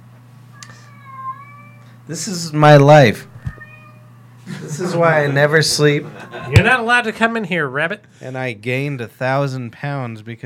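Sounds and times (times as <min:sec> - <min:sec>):
steady low hum: 0:00.0 - 0:10.4
cat meowing: 0:00.5 - 0:02.0, 0:03.3 - 0:04.4, 0:06.2 - 0:06.8
speech: 0:02.1 - 0:03.3, 0:04.8 - 0:10.4
laughter: 0:04.4 - 0:06.9.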